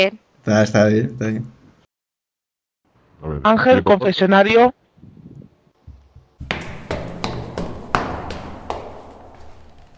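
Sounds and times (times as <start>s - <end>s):
speech: 0.0s - 1.6s, 3.2s - 5.1s
knocking firmly on a door: 5.9s - 9.9s.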